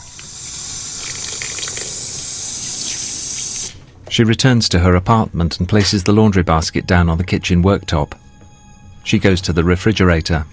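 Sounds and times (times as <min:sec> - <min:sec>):
water gushing from a running tap as washing is rinsed: 0:00.0 - 0:03.8
speech: 0:04.2 - 0:08.2, 0:09.0 - 0:10.5.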